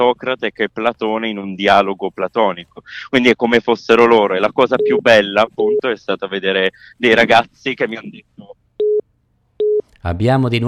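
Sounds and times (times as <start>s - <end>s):
speech: 0.0s - 8.5s, 10.0s - 10.6s
telephone busy signal on a lost phone line: 4.8s - 5.0s, 9.6s - 9.8s.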